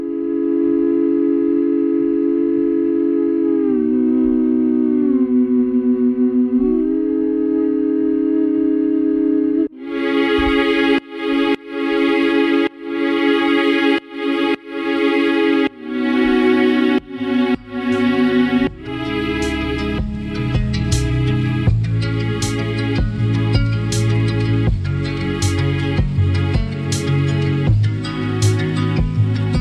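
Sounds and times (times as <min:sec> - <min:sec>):
whistled melody pitched down an octave into an eerie theremin-like tone: 0:00.0 - 0:25.7
pulsing rhythmically chopped musical backing: 0:09.8 - 0:29.6.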